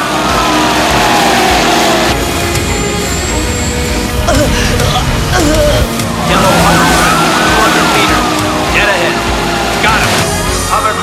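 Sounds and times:
churning roar of police boat engines and water: 0.0 - 11.0
police boat sirens wailing: 0.0 - 11.0
indistinct voices: 1.2 - 11.0.

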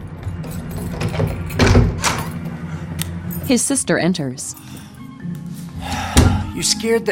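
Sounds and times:
front door opening: 0.2 - 2.5
speech: 3.5 - 4.8, 6.6 - 7.1.

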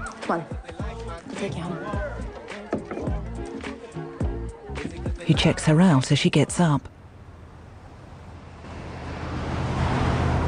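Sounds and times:
speech: 0.3 - 2.1, 5.3 - 6.9
broad road noise of busy city traffic: 0.8 - 10.4
pickup truck engine droning in city traffic: 6.9 - 10.4.

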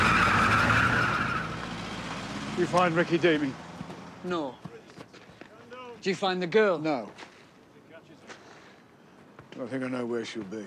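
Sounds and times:
car tyres squealing and skidding as a car drives off: 0.0 - 5.0
car engine rumble: 0.0 - 5.7
speech: 2.6 - 3.6, 4.2 - 4.7, 6.0 - 7.2, 9.6 - 10.6.

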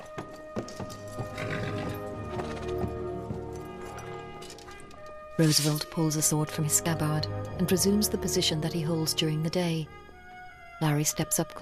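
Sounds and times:
horse hooves clip-clopping onto a platform: 0.0 - 5.2
horse snorting: 0.9 - 2.8
horse whinny: 1.0 - 2.7
speech: 5.4 - 10.0, 10.8 - 11.6.

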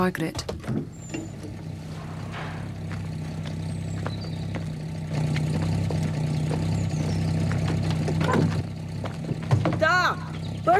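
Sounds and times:
speech: 0.0 - 1.0, 10.1 - 10.7
black car engine idling in a farmyard: 0.0 - 10.7.

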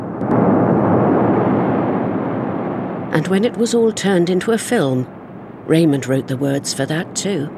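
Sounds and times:
sharp cracks of a nuclear blast: 0.0 - 3.2
nuclear blast roaring through houses in a film: 0.0 - 5.7
speech: 3.2 - 7.5.

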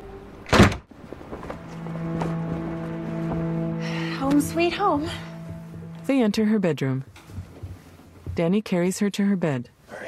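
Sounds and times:
heavy door slamming shut: 0.4 - 0.9
steady low hum: 1.0 - 8.5
speech: 4.3 - 5.3, 6.1 - 7.1, 8.4 - 9.7
faint clattering movements: 7.0 - 8.4.

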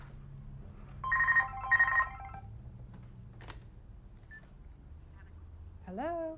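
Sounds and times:
landline telephone ringing in a hallway: 1.0 - 2.5.

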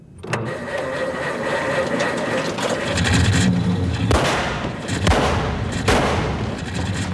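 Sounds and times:
old car engine starting in a cargo bay: 0.2 - 7.1
old car engine backfire bangs: 4.1 - 6.6.

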